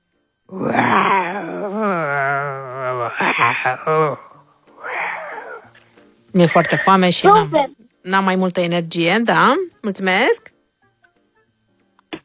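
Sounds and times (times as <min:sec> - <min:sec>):
speech: 0:00.5 - 0:00.8, 0:03.6 - 0:04.3, 0:06.4 - 0:10.5
person vocally imitating a hungry tiger with growling moans: 0:00.5 - 0:05.8.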